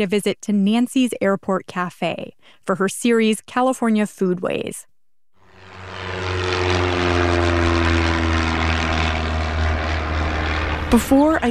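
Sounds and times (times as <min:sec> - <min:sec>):
speech: 0:00.0 - 0:04.9, 0:10.9 - 0:11.4
propeller airplane engine droning at a small airport in Willows, California: 0:05.4 - 0:11.4.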